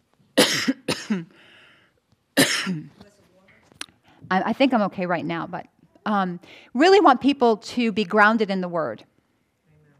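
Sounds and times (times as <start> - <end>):
person coughing as if something is caught in the throat: 0.4 - 1.3, 2.4 - 3.0
speech: 0.5 - 1.3, 4.3 - 9.1.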